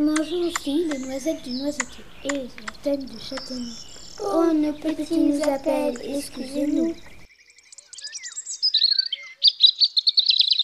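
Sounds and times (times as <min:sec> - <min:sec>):
speech: 0:00.0 - 0:07.1
European robin singing in a hedge: 0:00.0 - 0:10.6.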